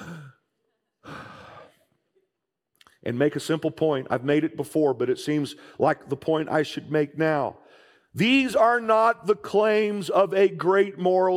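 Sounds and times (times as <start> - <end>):
person taking breaths: 1.0 - 1.9, 7.6 - 8.1
speech: 3.0 - 7.6, 8.2 - 11.3.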